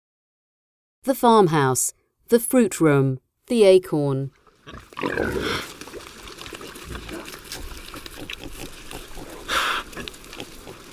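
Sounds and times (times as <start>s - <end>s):
speech: 1.0s - 5.7s
Iberian pig squealing snort: 4.6s - 5.7s, 6.8s - 10.9s
Iberian pigs grunting in an oak pasture: 4.6s - 10.9s
steady rustling: 4.6s - 10.9s.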